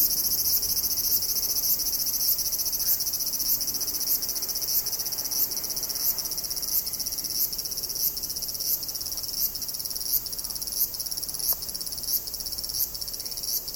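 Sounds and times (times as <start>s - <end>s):
cicada chorus buzzing in Tokyo in summer: 0.0s - 13.7s
continuous metallic hiss: 0.0s - 13.7s.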